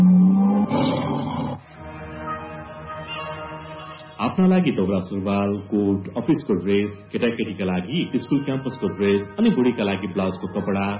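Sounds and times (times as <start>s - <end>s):
tiger roar in a radio station jingle: 0.0s - 1.7s
speech: 4.4s - 10.9s.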